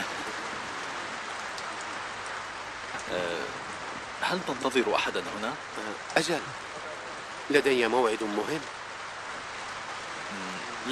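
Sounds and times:
steady rain falling: 0.0s - 10.8s
speech: 3.0s - 6.8s, 7.5s - 8.8s.

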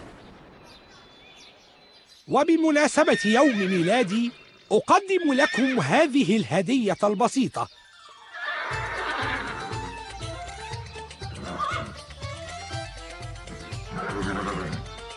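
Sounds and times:
speech: 2.3s - 7.8s
horse neighing: 2.9s - 4.4s, 5.0s - 6.3s, 8.1s - 10.1s, 11.3s - 12.1s, 13.5s - 14.9s.

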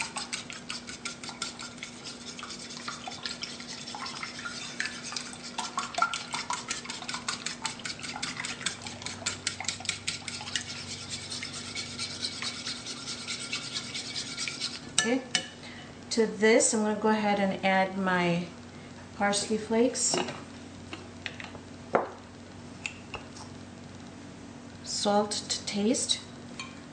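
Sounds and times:
half and half being whisked by hand in a bowl with a whisk: 0.0s - 14.8s
speech: 16.2s - 18.6s, 19.2s - 20.5s, 25.0s - 26.2s.

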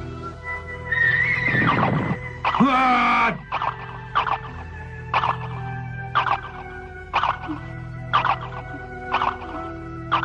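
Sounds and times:
low steady drone: 0.0s - 10.2s
horse whinnying while ridden up stone stairs: 0.9s - 3.4s.

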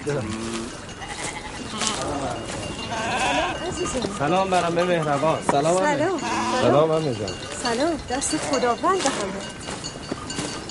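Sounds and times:
speech: 0.0s - 0.6s, 1.6s - 9.7s
sheep bleating: 0.1s - 4.2s, 5.9s - 6.9s.

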